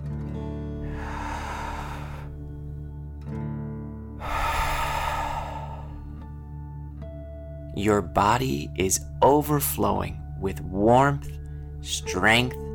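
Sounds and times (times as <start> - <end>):
steady low musical drone: 0.4 - 3.4, 4.1 - 7.9
deep breaths in through nose and out through mouth: 0.8 - 2.7, 4.2 - 6.4
speech: 7.8 - 12.6.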